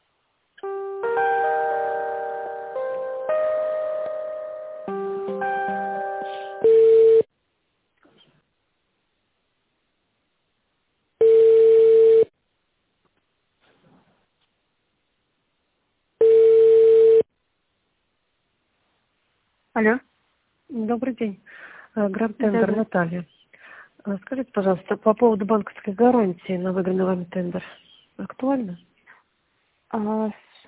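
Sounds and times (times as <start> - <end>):
telephone line transfer melody of stepped electronic tones: 0.6 - 7.3
long steady telephone ringback tones: 5.4 - 7.3, 11.2 - 12.3, 16.2 - 17.2
speech: 19.8 - 20.1, 20.7 - 23.4, 24.0 - 28.9, 29.9 - 30.6.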